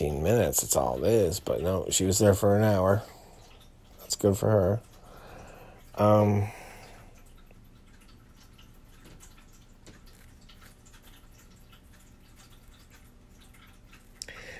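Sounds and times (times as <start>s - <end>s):
water dripping and pattering in a shower in the evening: 0.0s - 14.5s
speech: 0.2s - 3.2s, 4.2s - 4.9s, 6.0s - 6.6s.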